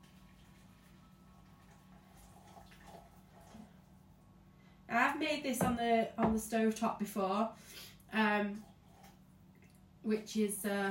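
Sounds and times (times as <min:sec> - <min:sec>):
hot water pouring from a kettle into a jug: 0:00.0 - 0:04.0
speech: 0:05.2 - 0:08.7, 0:10.0 - 0:10.8.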